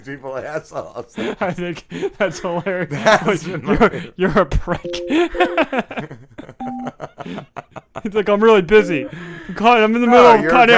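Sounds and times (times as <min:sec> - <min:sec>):
speech: 0:00.0 - 0:06.4, 0:07.2 - 0:10.7
laughter: 0:00.8 - 0:04.0, 0:05.1 - 0:08.2
electronic touch-tone beep: 0:04.8 - 0:05.8, 0:06.6 - 0:07.0, 0:08.8 - 0:09.5.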